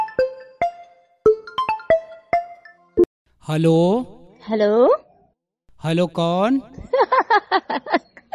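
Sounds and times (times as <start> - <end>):
phone ringtone for an incoming call: 0.0 - 3.1
speech: 3.5 - 5.0, 5.8 - 6.8, 7.4 - 8.0
laughter: 6.8 - 8.3.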